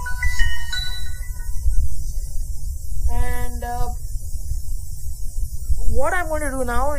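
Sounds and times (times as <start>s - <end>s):
Samsung Android phone startup chime: 0.0s - 1.5s
steady low rumble: 0.0s - 6.9s
speech: 6.0s - 6.9s.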